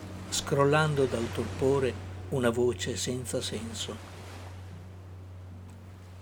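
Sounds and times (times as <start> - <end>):
sea surf washing against the shore: 0.0 - 4.8
speech: 0.3 - 4.1.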